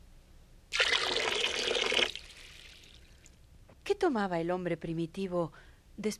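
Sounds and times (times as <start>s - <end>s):
water pouring with a rushing splash: 0.7s - 3.4s
speech: 4.0s - 6.1s.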